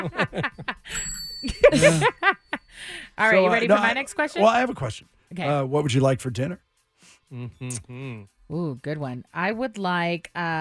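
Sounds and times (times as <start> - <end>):
speech: 0.0 - 0.5, 1.7 - 2.4, 3.2 - 6.7, 7.3 - 10.5
people laughing: 0.0 - 2.7
small bell ding: 0.9 - 2.6.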